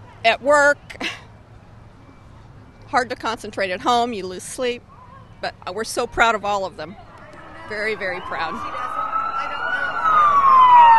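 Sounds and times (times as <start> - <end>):
speech: 0.2 - 1.2, 2.9 - 7.0, 7.7 - 8.8
fire engine sirens wailing as trucks escort a parade: 7.0 - 10.9.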